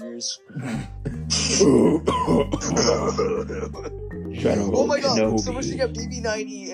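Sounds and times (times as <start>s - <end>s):
speech: 0.2s - 6.7s
rasping throat-clearing: 0.5s - 4.0s
person faking a coughing fit: 0.6s - 3.9s
laughter: 2.5s - 3.9s.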